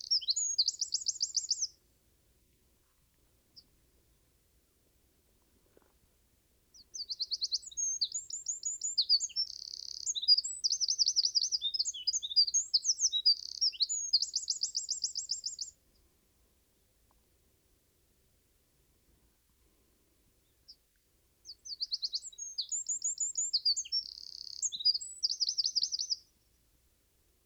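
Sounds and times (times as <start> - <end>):
Eurasian wren song of fast high tumbling notes and a ringing trill: 0.1 - 1.7, 7.0 - 15.7, 21.5 - 26.2.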